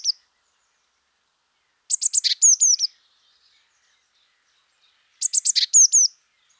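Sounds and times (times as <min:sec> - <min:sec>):
Eurasian blue tit Cyanistes caeruleus ticking notes and whistles: 0:01.9 - 0:02.9, 0:05.2 - 0:06.1.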